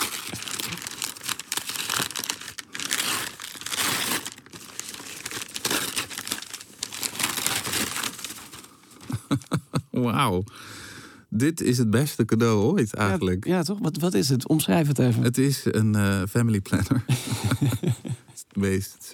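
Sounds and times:
wrapping paper crinkling as a gift is unwrapped: 0.0 - 9.7
laughter: 9.0 - 10.0, 16.7 - 18.4
speech: 10.0 - 19.1.

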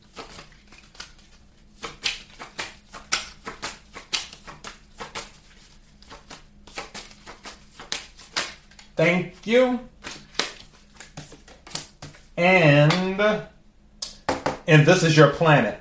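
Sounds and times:
playing cards shuffled and drawn during a card reading: 0.0 - 12.3
speech: 9.0 - 9.9, 12.4 - 13.5, 14.7 - 15.8.

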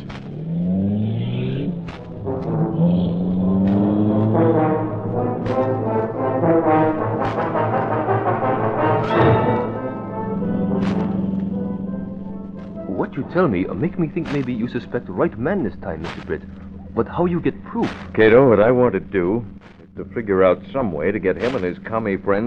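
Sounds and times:
powerful sleek car engine roaring and revving: 0.0 - 22.4
speech: 13.3 - 22.4.

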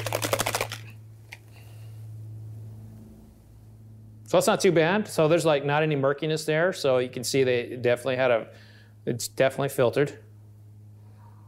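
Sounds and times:
bottle of whiskey sloshing when shaken: 0.0 - 1.0
low steady hum: 0.0 - 11.4
speech: 4.3 - 10.3.

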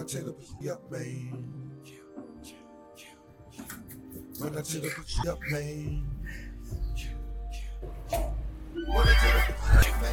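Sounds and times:
speech: 0.1 - 2.6, 4.4 - 7.1, 8.1 - 10.1
deep thumping bass beat: 5.2 - 10.1
horse neighing in a long shrill whinny: 8.8 - 9.9.

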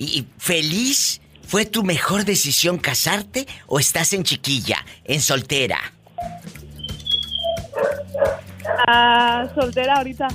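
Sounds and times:
speech: 0.0 - 6.0, 8.8 - 10.3
small dog yapping through a phone: 7.5 - 8.9.

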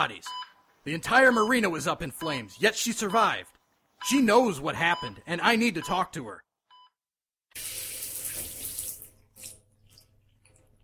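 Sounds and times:
speech: 0.0 - 6.5, 7.6 - 7.8
hotel shower water gushing: 7.6 - 10.8.

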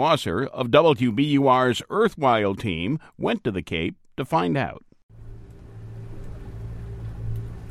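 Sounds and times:
speech: 0.0 - 4.9
tour boat engine droning: 5.1 - 7.6.

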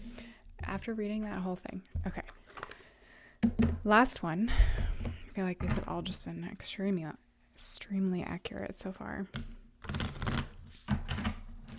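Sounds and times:
speech: 0.8 - 2.3, 3.9 - 4.8, 5.4 - 9.6
deck of cards being shuffled: 9.8 - 11.4.

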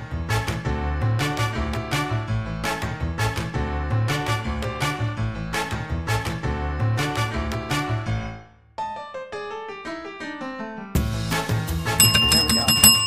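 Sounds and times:
full musical backing: 0.0 - 13.0
bright bell ringing: 11.9 - 13.0
descending chimes: 12.0 - 13.0.

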